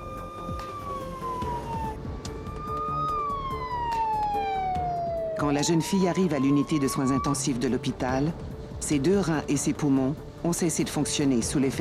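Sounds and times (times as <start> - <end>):
ambulance siren wailing: 0.0 - 7.9
low rumble of traffic: 0.0 - 11.7
speech: 5.4 - 11.7.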